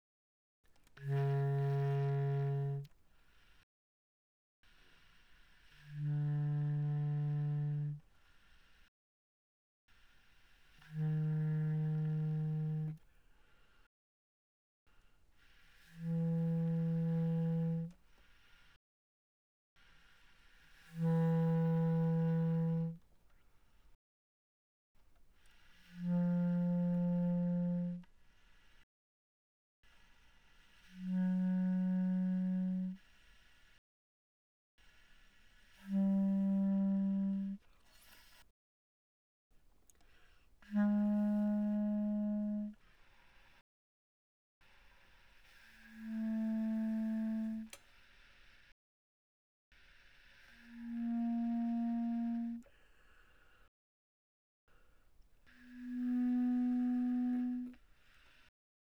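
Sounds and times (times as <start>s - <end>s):
bass clarinet playing pianissimo notes: 1.0s - 3.5s, 5.6s - 8.8s, 10.4s - 13.1s, 15.4s - 18.6s, 20.8s - 23.0s, 25.6s - 28.7s, 29.8s - 33.3s, 35.2s - 38.4s, 40.6s - 42.9s, 44.7s - 47.8s, 50.2s - 52.7s, 55.5s - 57.8s.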